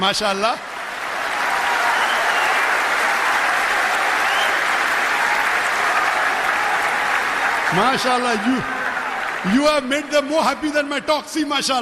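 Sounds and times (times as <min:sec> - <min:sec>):
speech: 0:00.0 - 0:00.7, 0:07.7 - 0:08.8, 0:09.4 - 0:11.8
large audience applauding: 0:00.2 - 0:10.8.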